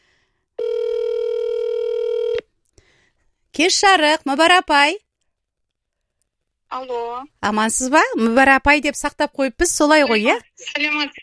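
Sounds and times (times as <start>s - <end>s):
long telephone beep of a call placed to a mobile phone: 0.6s - 2.4s
speech: 3.6s - 5.0s, 6.7s - 11.2s.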